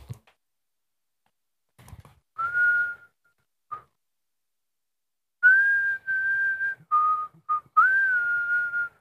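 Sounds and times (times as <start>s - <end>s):
person whistling a simple tune: 2.4s - 4.0s, 5.4s - 8.9s.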